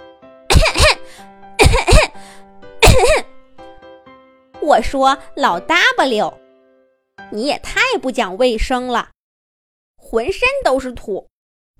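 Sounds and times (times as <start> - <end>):
person choking coughs from inhaled dust: 0.5 - 2.2, 2.8 - 3.3
faint breathing: 1.0 - 1.4, 2.2 - 2.6
speech: 4.6 - 6.4, 7.3 - 9.1, 10.1 - 11.3.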